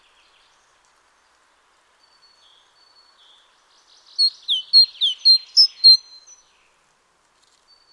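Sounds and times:
Great tit Parus major major song: 4.1s - 6.4s.

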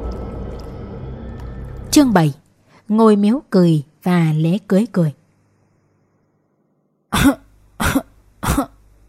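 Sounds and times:
speech: 2.0s - 5.2s, 7.2s - 7.4s
old man's dry harsh cough in a rural village: 7.1s - 8.8s.

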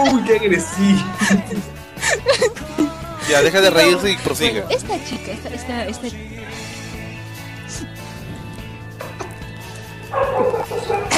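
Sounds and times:
speech: 0.0s - 2.4s, 3.3s - 6.6s
laughter: 0.0s - 6.2s, 10.5s - 11.1s
dogs barking: 7.8s - 11.1s.

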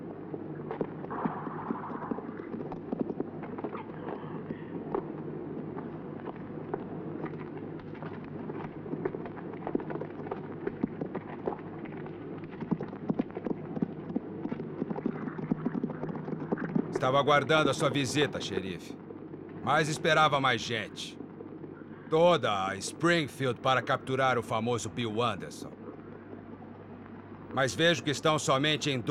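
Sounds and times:
horses' hooves clip-clopping as riders stop: 0.6s - 17.2s
speech: 17.0s - 19.0s, 19.6s - 21.2s, 22.1s - 25.7s, 27.6s - 29.0s.

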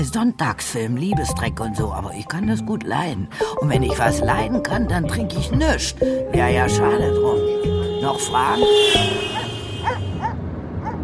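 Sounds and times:
speech: 0.0s - 10.0s
dog giving short high yipping barks: 9.8s - 11.0s.

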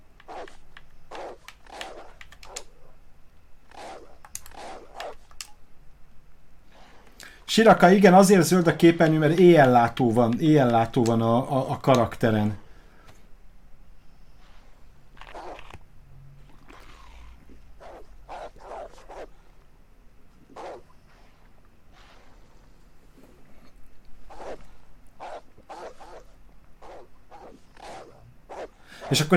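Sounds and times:
steady low noise: 0.0s - 29.3s
wolves in a video game barking and snarling: 0.2s - 3.0s, 16.6s - 19.5s, 20.4s - 29.2s
speech: 7.6s - 12.6s, 29.1s - 29.3s.

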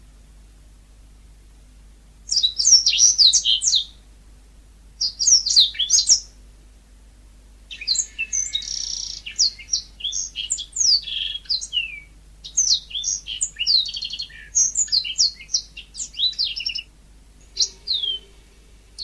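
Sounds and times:
faint steady hum: 0.0s - 19.0s
Oriental magpie-robin song with sharp high whistles and chattering notes: 2.3s - 4.0s, 5.0s - 6.3s, 7.7s - 19.0s.

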